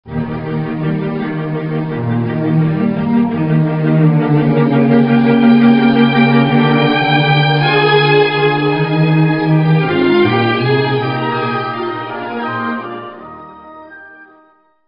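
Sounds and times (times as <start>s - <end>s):
orchestral cello: 0.1s - 14.3s.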